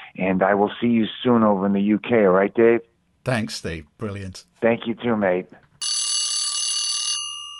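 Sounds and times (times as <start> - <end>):
speech: 0.2 - 5.6
alarm bell ringing: 5.8 - 7.5.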